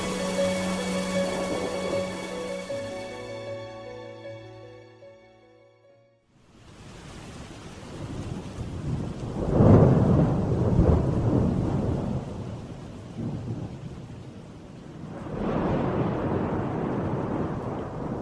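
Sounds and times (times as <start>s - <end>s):
thunder rumbling: 0.0s - 3.7s, 7.8s - 18.2s
steady pouring rain shower: 0.0s - 4.7s, 6.3s - 18.2s.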